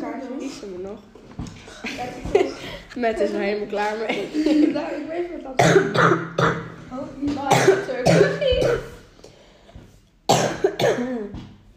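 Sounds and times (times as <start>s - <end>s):
speech: 0.6s - 8.9s
person coughing: 5.6s - 6.6s, 7.5s - 9.0s, 10.3s - 11.3s.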